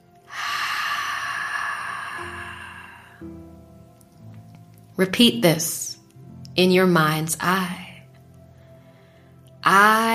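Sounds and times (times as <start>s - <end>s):
deep breath in and out: 0.3s - 3.6s, 8.5s - 9.4s
speech: 5.0s - 5.9s, 6.6s - 7.8s, 9.7s - 10.1s.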